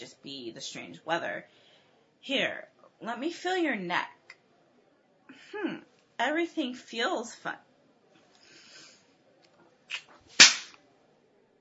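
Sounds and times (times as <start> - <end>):
speech: 0.2 - 1.6, 2.2 - 4.2, 5.3 - 7.7
sharp loud slap of a hand striking skin: 9.9 - 10.8.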